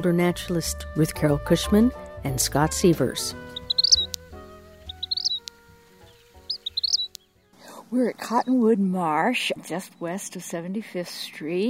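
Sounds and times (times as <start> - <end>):
speech: 0.0 - 3.6, 7.9 - 11.6
Vermilion flycatcher twittering: 3.1 - 7.5.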